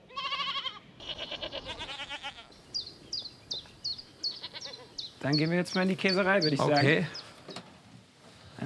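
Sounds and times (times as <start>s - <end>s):
goats bleating: 0.0s - 2.6s, 4.2s - 5.0s
speech: 5.2s - 7.2s.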